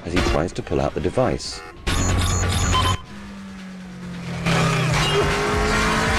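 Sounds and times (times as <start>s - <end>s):
police car engines roaring: 0.0s - 6.1s
speech: 0.1s - 2.1s
police car tires squealing: 1.8s - 6.1s.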